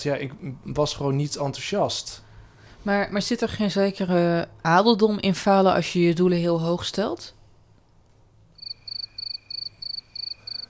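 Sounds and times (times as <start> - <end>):
speech: 0.0 - 7.4
crickets chirping: 8.6 - 10.6.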